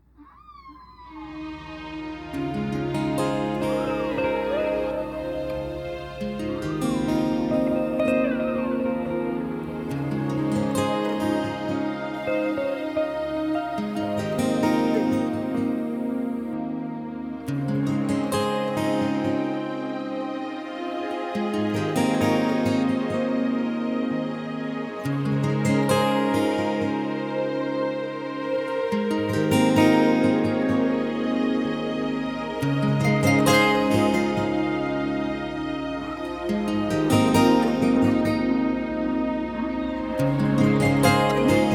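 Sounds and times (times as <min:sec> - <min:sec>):
guitar: 0:00.0 - 0:41.7
whale calls: 0:00.1 - 0:04.7.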